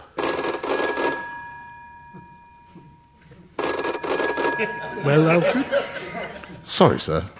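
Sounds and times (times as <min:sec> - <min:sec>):
telephone bell ringing: 0:00.0 - 0:06.5
laughter: 0:04.5 - 0:07.0
speech: 0:04.6 - 0:06.0, 0:06.7 - 0:07.3.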